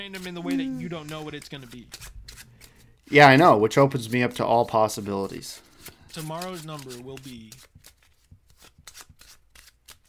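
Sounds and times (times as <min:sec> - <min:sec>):
speech: 0:00.0 - 0:02.5, 0:03.1 - 0:07.7
deck of playing cards being shuffled: 0:00.0 - 0:02.8, 0:05.2 - 0:10.0.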